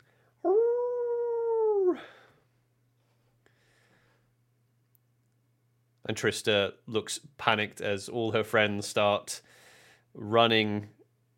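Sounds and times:
long steady howl through the trees: 0.4 - 2.3
speech: 1.9 - 2.2, 6.1 - 11.3.

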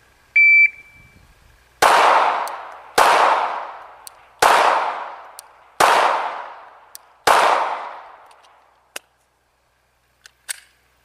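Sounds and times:
shot timer electronic beep: 0.4 - 1.2
gunshots at a target in a practical accuracy shooting drill: 1.8 - 8.3.

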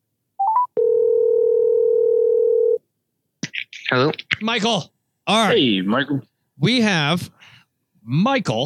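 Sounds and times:
electronic beeps of a phone call being placed: 0.4 - 2.8
telephone dial tone: 0.4 - 2.8
speech: 3.9 - 8.6.

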